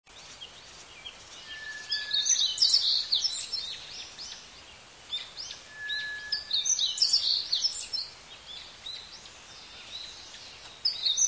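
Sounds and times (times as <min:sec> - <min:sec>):
flock of forest birds twittering in green forest: 0:00.1 - 0:11.2
soft hiss: 0:00.1 - 0:11.2
thin whistle: 0:01.5 - 0:02.8, 0:05.7 - 0:07.0.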